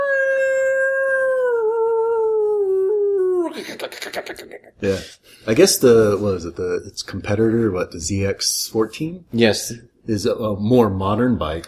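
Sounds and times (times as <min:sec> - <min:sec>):
voice imitating a motorcycle horn with a whale-like call: 0:00.0 - 0:03.6
speech: 0:03.6 - 0:11.6.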